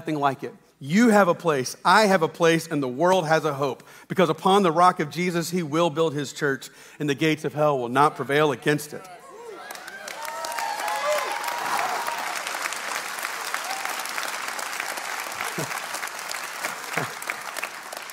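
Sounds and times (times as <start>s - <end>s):
speech: 0.0s - 9.2s
large audience applauding: 9.5s - 18.1s.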